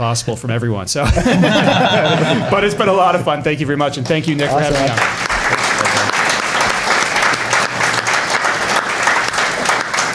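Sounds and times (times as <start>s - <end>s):
speech: 0.0s - 5.2s
laughter: 1.0s - 3.4s
audience applause: 4.0s - 10.1s.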